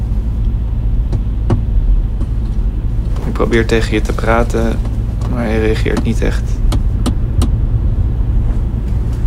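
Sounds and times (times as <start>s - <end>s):
car engine drone inside the cabin: 0.0s - 9.2s
road rumble heard from inside the cabin: 0.0s - 9.2s
speech: 3.4s - 6.6s.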